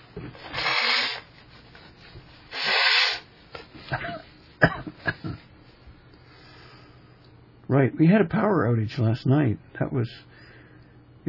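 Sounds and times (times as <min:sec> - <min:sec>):
speech: 0:00.2 - 0:00.7, 0:07.8 - 0:10.3
person blowing nose: 0:00.3 - 0:03.3
snuffles: 0:00.4 - 0:01.3, 0:02.5 - 0:03.3.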